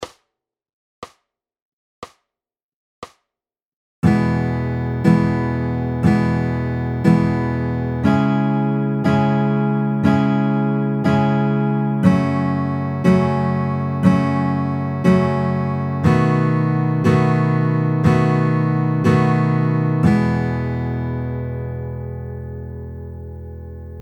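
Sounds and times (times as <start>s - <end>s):
chord progression in E major: 4.0s - 24.0s.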